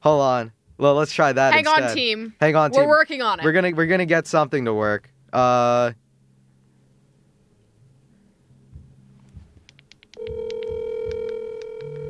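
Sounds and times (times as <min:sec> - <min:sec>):
speech: 0:00.0 - 0:06.0
faint hum: 0:00.0 - 0:12.0
phone ringing over a speakerphone: 0:10.2 - 0:12.0.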